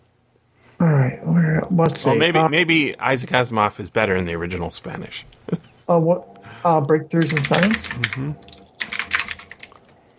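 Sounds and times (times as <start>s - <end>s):
speech: 0.8s - 8.6s
typing on clacky computer keyboard: 7.2s - 9.8s.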